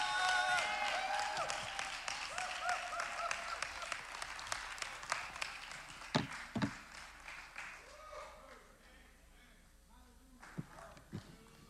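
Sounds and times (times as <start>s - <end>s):
audience applauding: 0.0s - 8.7s.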